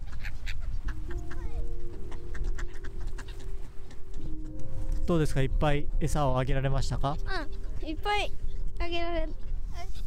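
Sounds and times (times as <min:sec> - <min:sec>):
ducks calling at a lake near Moriyama, Japan: 0:00.0 - 0:10.0
steady outdoor noise on a fine day: 0:00.0 - 0:10.0
speech: 0:05.1 - 0:09.4.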